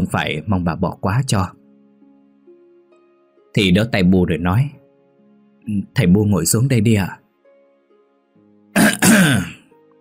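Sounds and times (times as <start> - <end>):
speech: 0.0 - 1.6, 3.6 - 4.8, 5.6 - 7.2, 9.1 - 9.5
woman clearing her throat: 8.8 - 9.6.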